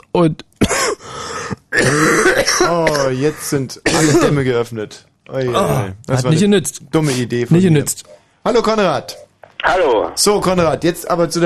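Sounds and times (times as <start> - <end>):
speech: 0.2 - 1.1, 1.8 - 11.4
person coughing: 0.6 - 4.4
person clearing throat roughly: 1.6 - 4.4.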